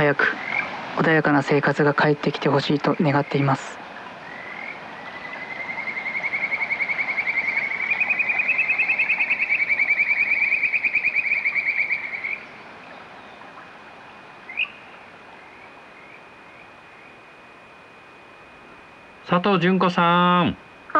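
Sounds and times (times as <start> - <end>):
frogs croaking in a rapid pulsing trill: 0.0 - 20.9
speech: 0.1 - 3.8, 19.3 - 20.9.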